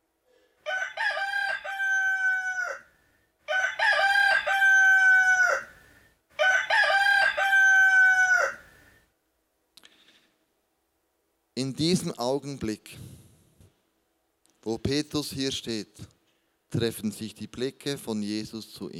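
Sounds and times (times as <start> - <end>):
rooster crowing: 0.6 - 8.9
speech: 11.8 - 13.2, 14.7 - 16.1, 16.8 - 18.9.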